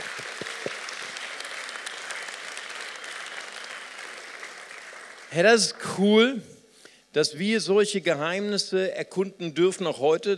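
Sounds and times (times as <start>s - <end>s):
audience applauding: 0.0s - 5.5s
speech: 5.3s - 6.5s, 7.1s - 10.3s.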